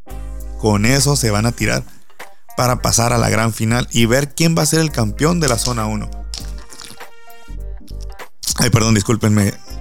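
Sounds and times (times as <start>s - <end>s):
speech: 0.6s - 2.0s, 2.6s - 6.2s, 8.6s - 9.6s
speaker with a drying throat sipping water: 5.5s - 7.1s.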